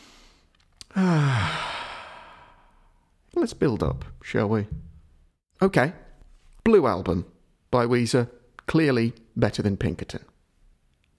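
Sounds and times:
deep slow breath with a voiced sighing exhale: 0.0s - 3.1s
speech: 3.4s - 4.9s, 5.6s - 6.0s, 6.6s - 10.3s.

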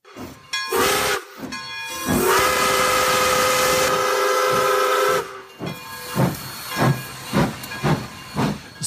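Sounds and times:
heavy steam hiss from a steam locomotive: 0.1s - 8.8s
steam locomotive chuffing as it pulls away: 0.2s - 8.8s
steam locomotive whistle: 0.7s - 5.5s.

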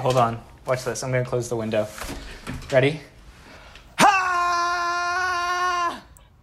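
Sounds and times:
speech: 0.0s - 3.1s
person screaming as loud as possible: 4.0s - 6.2s.

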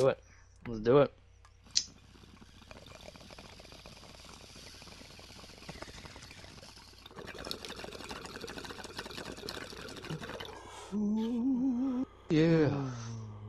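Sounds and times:
speech: 0.0s - 1.2s, 10.9s - 13.0s
water bubbling and gurgling in a full bong during a hit: 1.6s - 10.9s.

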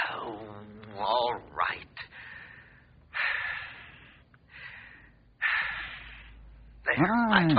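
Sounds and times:
speech: 1.0s - 2.1s, 7.0s - 7.5s
deep breaths: 2.0s - 6.8s.

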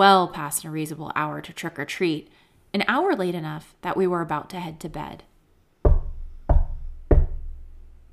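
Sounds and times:
speech: 0.0s - 5.3s
heavy knocking on a door late at night: 5.9s - 7.8s.

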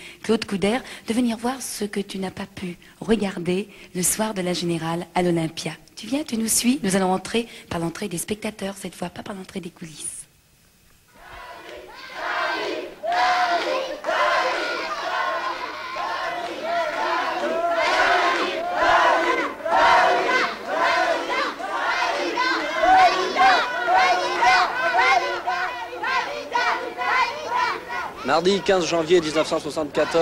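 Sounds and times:
speech: 0.2s - 10.2s, 28.3s - 30.1s
people shouting in a crowd outside a music hall: 11.2s - 30.1s
large tightly packed crowd chattering outside the Olympia music hall: 11.3s - 30.1s.

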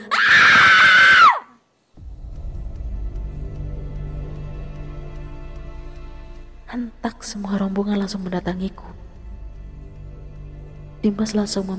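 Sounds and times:
shrill pained scream: 0.0s - 1.7s
speech: 6.8s - 9.0s, 11.0s - 11.7s.

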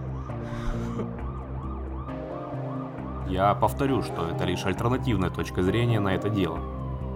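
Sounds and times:
ambulance and police car emergency sirens wailing: 0.0s - 5.3s
speech: 0.5s - 1.2s, 3.3s - 6.8s.

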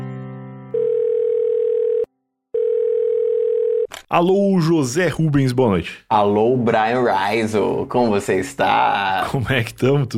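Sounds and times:
telephone dial tone while placing a call: 0.8s - 3.9s
speech: 4.1s - 10.1s.

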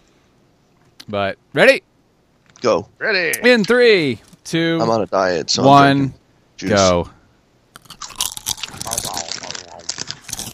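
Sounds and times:
speech: 1.1s - 1.9s, 2.6s - 7.2s
crunching Sun Chips: 7.8s - 10.5s.

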